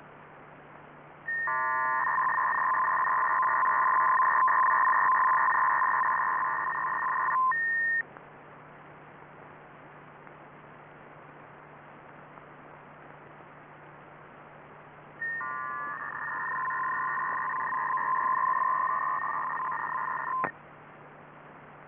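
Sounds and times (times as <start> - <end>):
Yugoslav military 266.67 baud FSK data burst: 1.3 - 8.0, 15.2 - 20.5.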